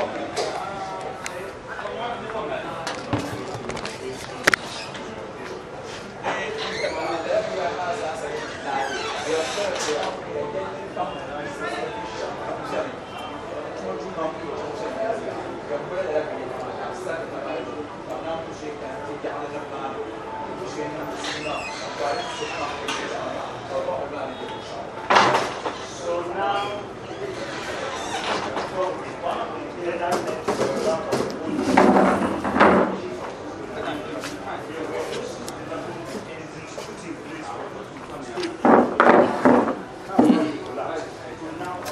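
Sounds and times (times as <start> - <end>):
indistinct murmuring voices: 0.0 - 41.9
steady busy noise: 0.0 - 41.9
chairs being moved and arranged: 2.9 - 10.2, 27.3 - 28.9, 30.1 - 33.1, 38.5 - 40.6.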